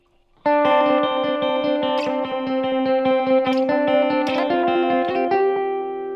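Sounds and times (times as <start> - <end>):
electric guitar playing a rhythmic part through an eighth-note delay: 0.0 - 6.1.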